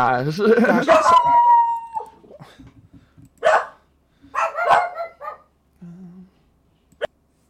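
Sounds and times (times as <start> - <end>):
speech: 0.0 - 1.6
several dogs barking: 3.4 - 5.5.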